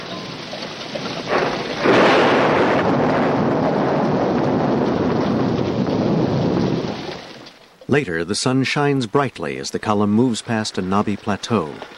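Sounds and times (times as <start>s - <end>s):
loud roll of thunder rumbling: 0.0s - 7.6s
steady rain hissing in a heavy thunderstorm: 0.0s - 11.9s
speech: 7.9s - 11.9s.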